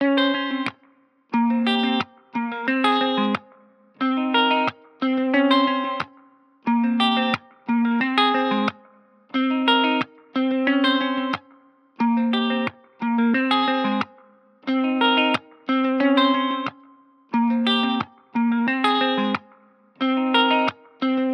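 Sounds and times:
180 BPM F minor guitar arpeggio loop: 0.0 - 21.3.

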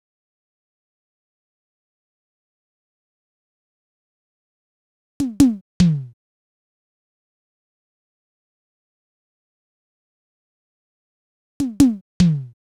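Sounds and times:
percussion drum loop: 5.2 - 6.2, 11.6 - 12.6.

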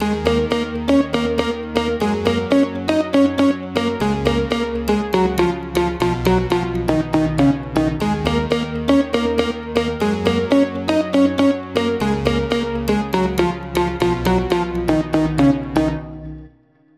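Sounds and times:
house synth loop in D sharp at 120 BPM: 0.0 - 16.3.

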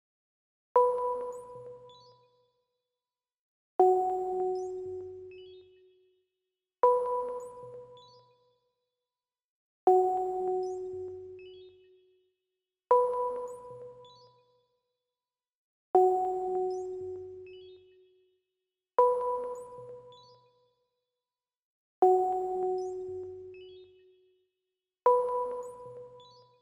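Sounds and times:
D sharp minor sparkle pluck synth loop: 0.8 - 2.1, 3.8 - 5.6, 6.8 - 8.2, 9.9 - 11.7, 12.9 - 14.3, 16.0 - 17.8, 19.0 - 20.4, 22.0 - 23.9, 25.1 - 26.5.

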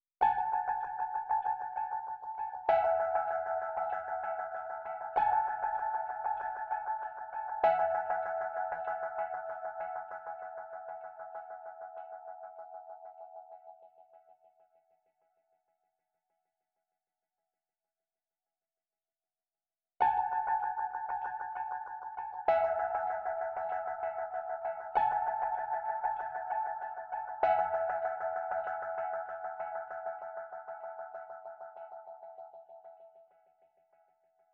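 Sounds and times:
West Coast style electric piano melody in F sharp minor: 0.2 - 13.9, 20.0 - 33.2.

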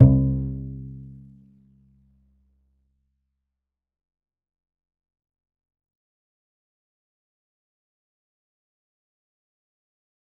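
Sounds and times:
lo-fi upright bass note C: 0.0 - 1.3.

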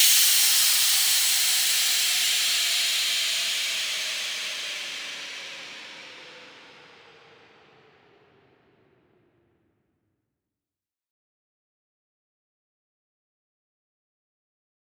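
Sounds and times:
piped white noise sweeping down: 0.0 - 9.2.

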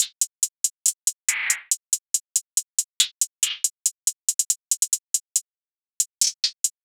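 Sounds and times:
hi-hat loop at 140 BPM: 0.0 - 5.4, 6.0 - 6.8.

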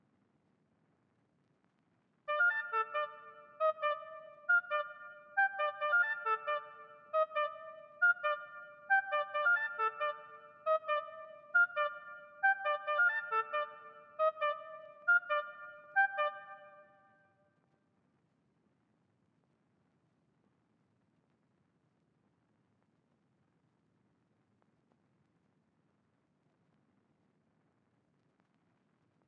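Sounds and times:
oboe melody in G minor at 136 BPM, trap loop: 2.3 - 16.9.

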